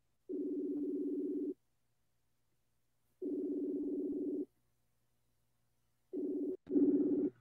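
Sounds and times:
outgoing phone call ringback tone: 0.3 - 1.6, 3.2 - 4.5, 6.1 - 7.3.

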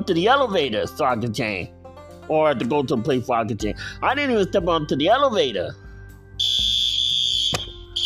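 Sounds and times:
speech: 0.0 - 5.8
loud shrill fire alarm blaring during a fire alarm test: 6.4 - 8.0
sharp click or thump: 7.5 - 7.8.

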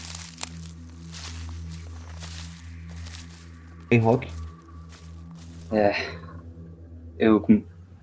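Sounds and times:
crunchy footsteps walking backward: 0.0 - 5.8
steady low droning hum: 0.0 - 8.0
speech: 3.9 - 4.4, 5.7 - 6.3, 7.2 - 7.7.

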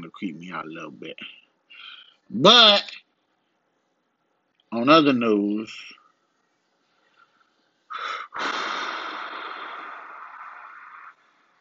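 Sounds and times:
speech: 0.1 - 1.4, 2.3 - 3.0, 4.7 - 6.0, 8.0 - 8.7
heavy breathing: 1.7 - 2.2, 7.9 - 11.5.

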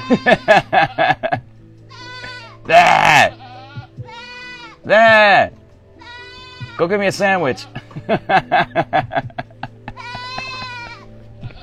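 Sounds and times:
goats bleating loudly: 0.0 - 1.1, 1.8 - 8.0, 9.9 - 11.6
laughter: 0.0 - 1.5, 7.7 - 11.0
speech: 0.1 - 1.4, 6.8 - 9.3.

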